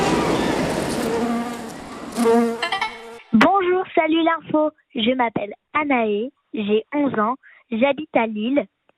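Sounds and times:
bee buzzing: 0:00.1 - 0:03.2
speech: 0:04.3 - 0:08.7.

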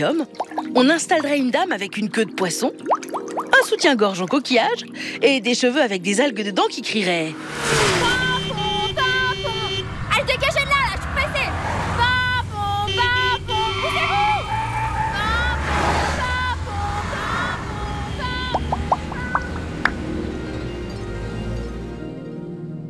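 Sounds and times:
speech: 0:00.0 - 0:03.0, 0:03.6 - 0:08.0
horns honking in street traffic: 0:07.3 - 0:20.3
steady rumble of traffic engines: 0:07.4 - 0:22.4
fire truck siren wailing: 0:07.8 - 0:19.9.

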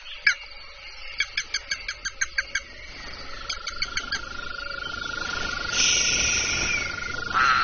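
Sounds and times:
night insects humming: 0:00.0 - 0:07.6
toads croaking at night: 0:00.0 - 0:07.6
rushing hiss: 0:05.3 - 0:07.6.

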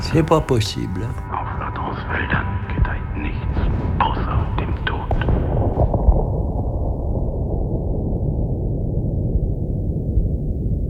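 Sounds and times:
speech: 0:00.1 - 0:01.3, 0:02.1 - 0:03.0
distant cannon fire: 0:02.3 - 0:10.8.

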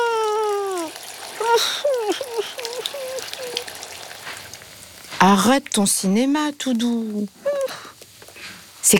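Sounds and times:
young child whimpering and crying: 0:00.0 - 0:03.7, 0:07.4 - 0:07.9
shower water running at a swimming pool: 0:00.0 - 0:07.9
speech: 0:01.6 - 0:02.5, 0:05.2 - 0:07.4.

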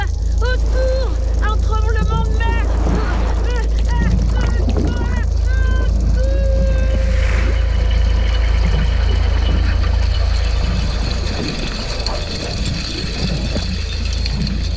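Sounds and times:
deep trawler engine drone underwater: 0:00.0 - 0:14.7.

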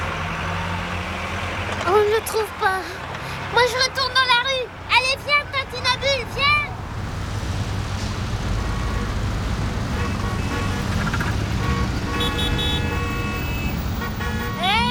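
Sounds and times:
dense street traffic rumbling: 0:00.0 - 0:14.8
speech: 0:02.1 - 0:06.7
car horns honking: 0:08.6 - 0:14.8.

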